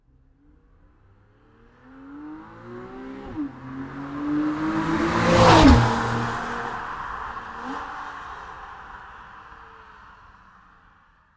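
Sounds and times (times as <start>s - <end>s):
911 Carrera S driving past: 1.0s - 9.9s.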